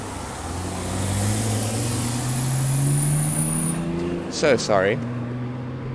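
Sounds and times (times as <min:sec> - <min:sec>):
loud truck engine rumbling past with road noise: 0:00.0 - 0:05.8
speech: 0:04.4 - 0:05.2.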